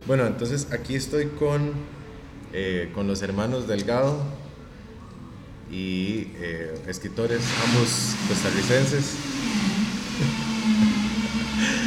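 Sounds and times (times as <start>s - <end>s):
speech: 0.1s - 4.4s, 5.7s - 9.6s
industrial blender running at a lunch place in Heredia Costa Rica: 7.3s - 11.8s.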